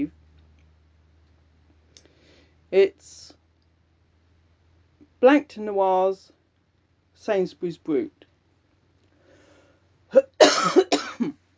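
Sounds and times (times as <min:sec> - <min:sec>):
speech: 0:02.7 - 0:03.4, 0:05.2 - 0:06.4, 0:07.2 - 0:08.2, 0:10.1 - 0:11.4
person coughing: 0:10.1 - 0:11.4.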